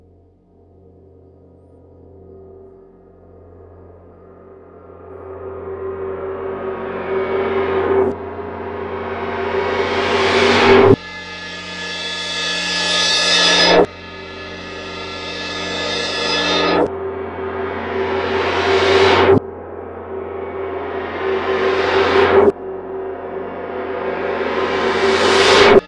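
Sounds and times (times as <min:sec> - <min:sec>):
bowed metallic cymbals: 0:00.9 - 0:25.8.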